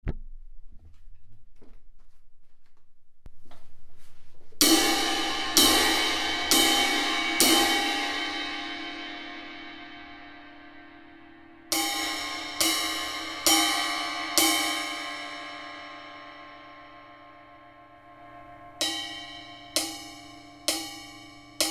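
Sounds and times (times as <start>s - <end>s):
18-inch crash cymbal: 4.6s - 21.6s.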